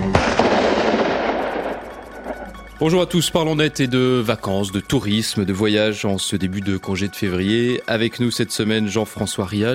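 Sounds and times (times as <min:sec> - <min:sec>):
gunshots: 0:00.1 - 0:02.6
speech: 0:02.8 - 0:09.7.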